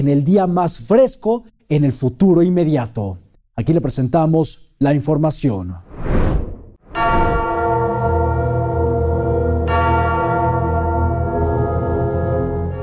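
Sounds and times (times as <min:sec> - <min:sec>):
speech: 0:00.0 - 0:06.2
church bells ringing: 0:07.0 - 0:12.8.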